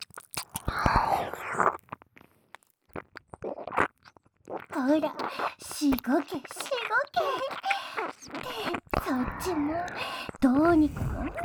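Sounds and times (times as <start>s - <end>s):
wet crunchy chewing and biting: 0.0s - 9.0s
speech: 4.9s - 11.4s.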